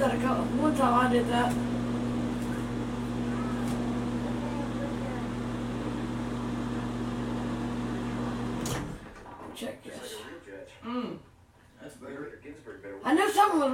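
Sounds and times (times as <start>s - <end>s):
microwave oven humming: 0.0s - 9.2s
speech: 0.1s - 1.8s, 9.6s - 13.7s.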